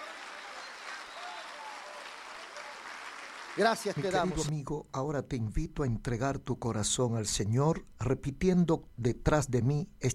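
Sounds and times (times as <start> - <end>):
crowd applauding: 0.0 - 4.5
speech: 3.6 - 10.1.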